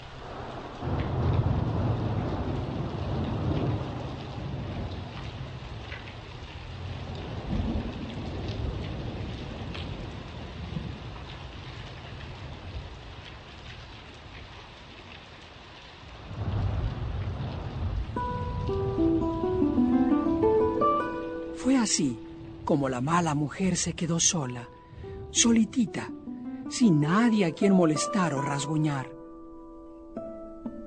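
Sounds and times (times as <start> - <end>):
rain drumming on roofs of houses: 0.0 - 28.8
faint melodic tone line: 18.2 - 22.8, 25.6 - 30.8
speech: 21.8 - 29.2.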